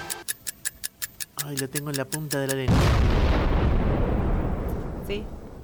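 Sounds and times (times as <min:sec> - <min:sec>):
speech: 0:01.6 - 0:03.2, 0:05.1 - 0:05.4
bomb explosion sound effect in a quiz game: 0:02.7 - 0:05.6.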